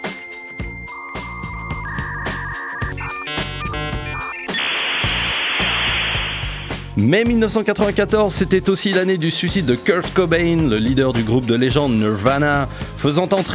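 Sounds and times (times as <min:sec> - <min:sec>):
56K dial-up modem connection handshake: 0:00.0 - 0:06.7
speech: 0:07.0 - 0:13.5.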